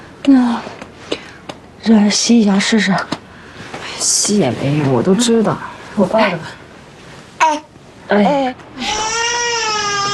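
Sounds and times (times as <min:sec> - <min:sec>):
speech: 0:00.2 - 0:00.8, 0:01.8 - 0:03.2, 0:04.0 - 0:06.6, 0:08.1 - 0:08.9
hungry baby crying: 0:08.8 - 0:10.1.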